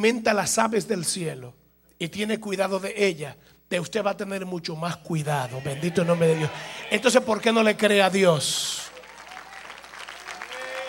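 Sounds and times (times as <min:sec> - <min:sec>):
speech: 0:00.0 - 0:08.9
weak scattered applause from a church congregation during a sermon: 0:08.8 - 0:10.8.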